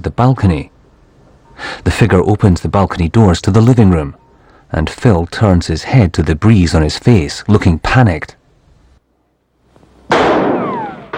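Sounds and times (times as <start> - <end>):
speech: 0.0 - 0.7, 1.6 - 8.4
bullet hitting a doorframe: 10.1 - 11.1
gunshot: 10.1 - 11.1.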